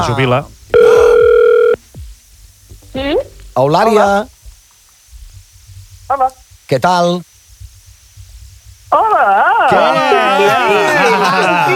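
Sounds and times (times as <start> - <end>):
speech: 0.0 - 0.8, 3.0 - 4.3, 6.1 - 7.3, 8.9 - 11.7
faint low rumbles: 0.0 - 9.1
telephone line tone while calling someone: 0.7 - 1.8
laughter: 9.0 - 11.7.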